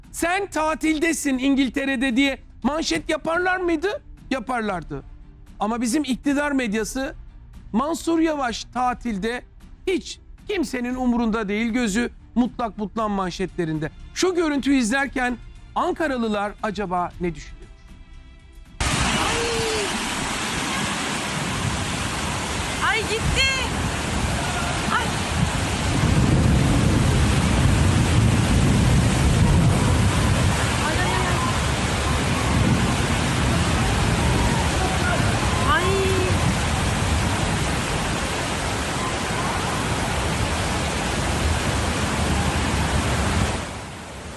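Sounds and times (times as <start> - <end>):
speech: 0.2 - 17.6
heavy rain pouring down: 18.8 - 44.3.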